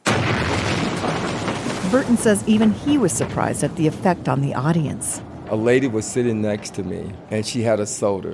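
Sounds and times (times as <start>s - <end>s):
cinematic film explosion with rumbling low-end debris: 0.0s - 7.3s
speech: 1.9s - 8.3s.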